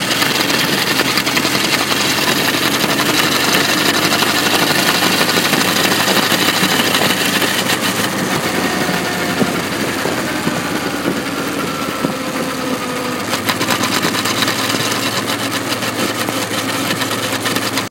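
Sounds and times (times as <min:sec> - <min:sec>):
motorcycle making a worrying noise in the front end: 0:00.0 - 0:17.8.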